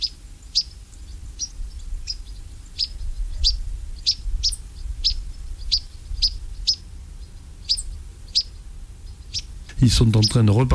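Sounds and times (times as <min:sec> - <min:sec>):
migrating European pied flycatcher giving short sharp high chirps: 0:00.0 - 0:10.7
steady low rumble: 0:03.1 - 0:10.7
speech: 0:09.9 - 0:10.7.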